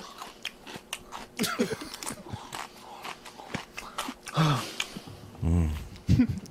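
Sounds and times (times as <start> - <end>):
crunchy chewing and biting of a dry snack: 0.0 - 5.1.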